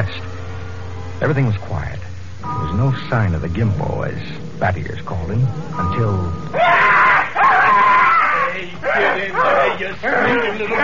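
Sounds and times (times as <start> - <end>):
speech: 1.2 - 7.1, 8.6 - 10.8
captured wild man screaming and wailing: 6.5 - 10.8
people shouting: 6.5 - 10.8.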